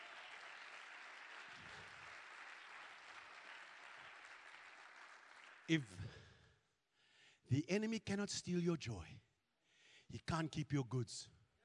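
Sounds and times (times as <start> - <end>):
audience applause: 0.0 - 5.8
speech: 5.7 - 6.2, 7.5 - 9.2, 10.1 - 11.4.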